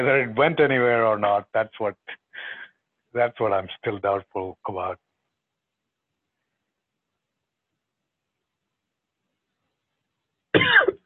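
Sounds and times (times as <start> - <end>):
speech: 0.0 - 5.0
coughing: 10.6 - 11.0.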